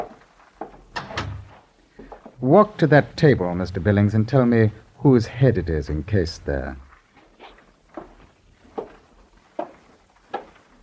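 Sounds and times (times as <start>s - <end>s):
door swinging shut and latching with wooden knocks: 1.0s - 1.6s
speech: 2.4s - 6.8s.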